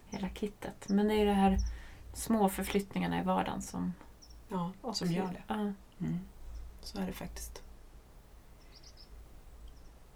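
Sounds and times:
small bird chirping outdoors: 0:00.0 - 0:02.9, 0:04.1 - 0:05.5, 0:06.1 - 0:07.6, 0:08.5 - 0:10.1
speech: 0:00.1 - 0:07.6.

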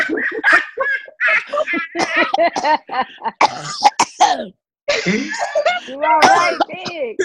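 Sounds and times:
laughter: 0:00.0 - 0:03.4, 0:04.9 - 0:06.9
person making exaggerated barky coughs: 0:01.4 - 0:07.2
speech: 0:02.6 - 0:06.6
person clearing throat: 0:03.4 - 0:05.6, 0:06.2 - 0:07.2.

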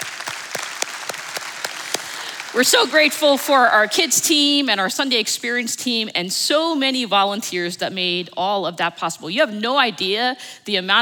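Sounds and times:
crowd applauding: 0:00.0 - 0:04.0
speech: 0:02.5 - 0:11.0.

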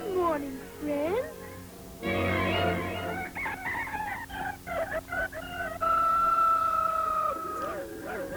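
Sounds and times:
speech: 0:00.4 - 0:01.4
rooster crowing in the morning: 0:02.0 - 0:08.3.

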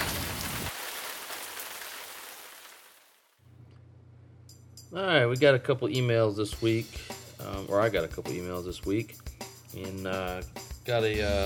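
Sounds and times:
steady rain: 0:00.0 - 0:03.3
speech: 0:04.9 - 0:11.4.

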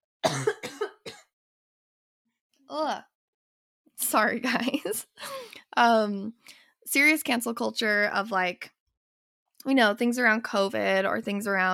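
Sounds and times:
raspy coughing: 0:00.2 - 0:01.3
speech: 0:02.7 - 0:03.1, 0:04.0 - 0:08.8, 0:09.6 - 0:11.7.

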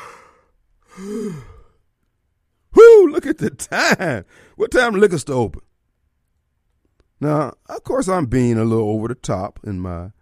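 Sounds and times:
person yawning: 0:00.0 - 0:01.8
speech: 0:01.0 - 0:01.6, 0:03.2 - 0:05.7, 0:07.2 - 0:10.1.

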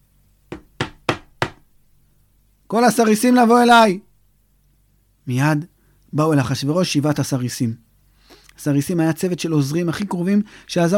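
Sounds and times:
scepter knocking on a table: 0:00.5 - 0:01.6
speech: 0:02.7 - 0:04.1, 0:05.3 - 0:07.9, 0:08.6 - 0:10.9.

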